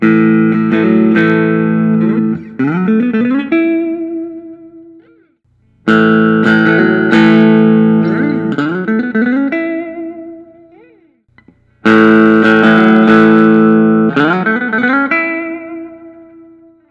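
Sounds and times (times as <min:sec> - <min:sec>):
Gibson Custom SG VOS electric guitar: 0:00.0 - 0:16.8.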